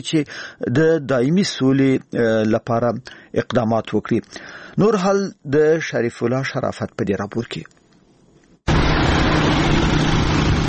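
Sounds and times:
speech: 0:00.0 - 0:07.8
motorcycles and cars driven by armed militants in Afghanistan: 0:08.7 - 0:10.6.

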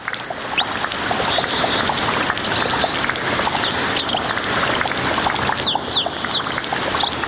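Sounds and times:
water flowing and splashing at a mountain spring: 0:00.0 - 0:07.2.

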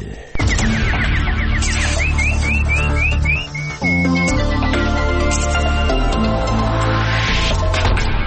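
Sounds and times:
nightingale-like chirps and trills: 0:00.4 - 0:06.2
loud full instrumental music: 0:00.6 - 0:07.9.

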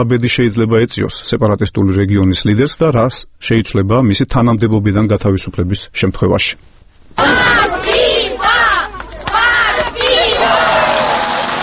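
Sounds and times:
speech: 0:00.0 - 0:07.8
large crowd cheering and shouting to greet the Russian president in Tskhinvali: 0:07.2 - 0:11.6
crowd applauding to greet a president: 0:08.9 - 0:11.6.

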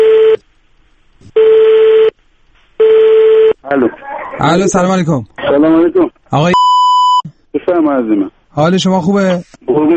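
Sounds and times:
telephone tone as a call is dialed: 0:00.0 - 0:00.4, 0:01.4 - 0:02.1, 0:02.8 - 0:03.6
speech: 0:03.7 - 0:06.8, 0:07.7 - 0:09.9.

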